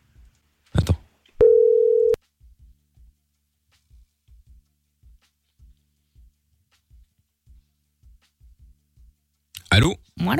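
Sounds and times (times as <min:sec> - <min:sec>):
telephone ringback tone while calling someone back: 0:01.4 - 0:02.2
speech: 0:09.8 - 0:10.3.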